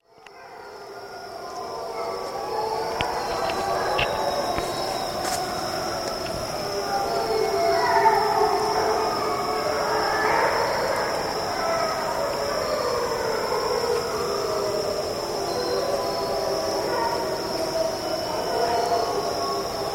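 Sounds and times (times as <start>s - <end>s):
wolf howls: 0.2s - 19.9s.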